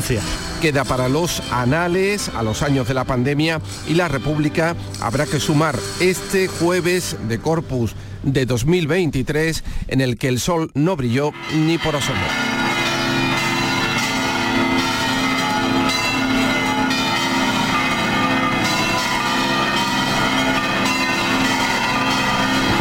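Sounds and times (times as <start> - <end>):
cathedral church bells pealing: 0.0 - 7.8, 11.3 - 22.8
speech: 0.0 - 12.4.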